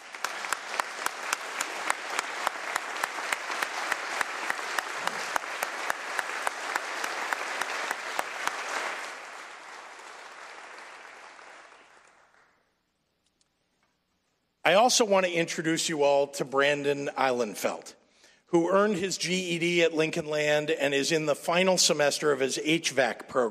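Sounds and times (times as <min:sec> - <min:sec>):
audience applauding a college student: 0:00.0 - 0:12.6
speech: 0:14.7 - 0:23.4.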